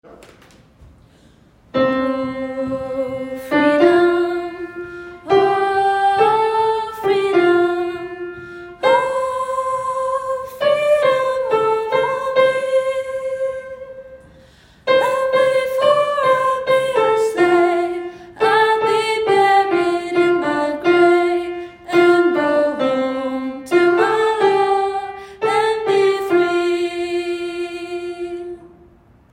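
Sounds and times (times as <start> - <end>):
soprano singing gospel: 1.7 - 28.9.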